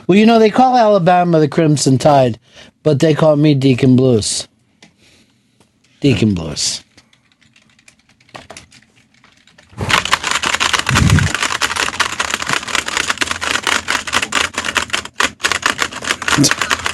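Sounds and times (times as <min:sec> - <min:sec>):
speech: 0:00.1 - 0:04.5, 0:06.0 - 0:06.9
typewriter keys clattering from fast typing: 0:07.2 - 0:16.9.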